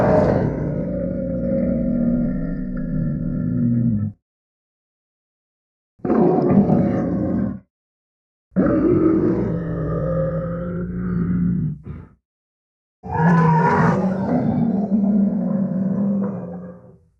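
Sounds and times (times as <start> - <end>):
wild tiger growling and roaring: 0.0 - 4.2, 6.0 - 7.7, 8.6 - 12.2, 13.0 - 17.1.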